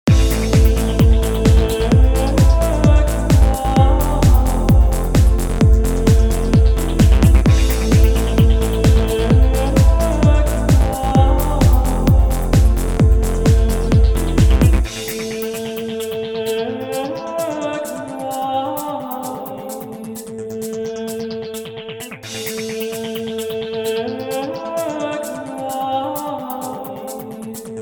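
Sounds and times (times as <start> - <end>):
sampler sounds: 0.0 - 27.7.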